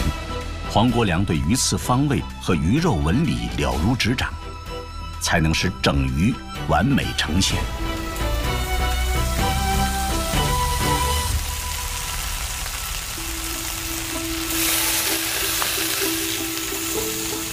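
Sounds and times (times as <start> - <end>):
soft music: 0.0 - 17.5
speech: 0.7 - 4.4, 5.2 - 7.9
farm-raised shimu fish sizzling in a pan over low heat: 7.8 - 17.5.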